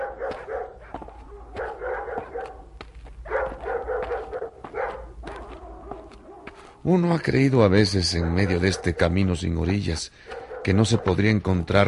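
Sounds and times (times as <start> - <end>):
several dogs barking and yipping: 0.0 - 6.8, 7.7 - 11.8
speech: 6.8 - 11.8.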